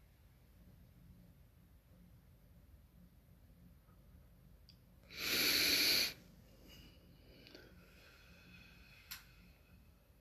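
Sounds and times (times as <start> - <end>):
deep breath in during a meditation session: 5.1 - 9.6.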